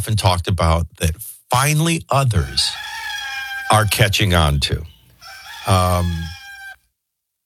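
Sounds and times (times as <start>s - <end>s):
speech: 0.0s - 2.9s, 3.7s - 4.9s, 5.6s - 6.4s
rooster crowing: 2.4s - 6.8s.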